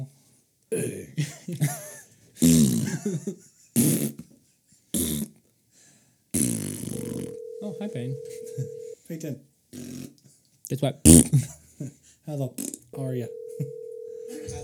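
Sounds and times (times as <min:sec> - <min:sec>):
speech: 0:00.7 - 0:01.8, 0:07.8 - 0:09.5, 0:10.8 - 0:13.4
laughter: 0:01.1 - 0:03.8
loud buzzy and sputtering fart noises: 0:02.4 - 0:03.0, 0:03.8 - 0:04.3, 0:05.0 - 0:05.4, 0:06.4 - 0:07.4, 0:09.8 - 0:10.2, 0:11.1 - 0:11.5, 0:12.6 - 0:12.9.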